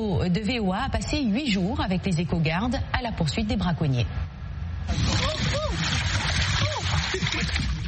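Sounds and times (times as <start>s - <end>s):
speech: 0.0s - 7.8s
water washing around a dugout canoe on a river: 4.9s - 7.8s.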